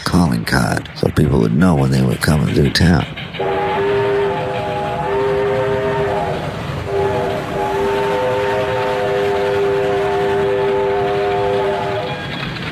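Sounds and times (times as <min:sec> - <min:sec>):
rumble and clatter of a moving train: 0:00.0 - 0:12.6
speech: 0:00.2 - 0:03.5
steam locomotive whistle blasts: 0:03.4 - 0:12.4.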